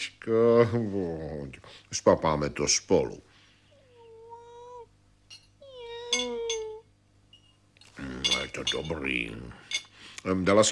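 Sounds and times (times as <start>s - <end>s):
speech: 0.2s - 3.3s, 8.0s - 10.6s
short clinks: 5.3s - 10.0s
cat meowing: 5.6s - 6.8s.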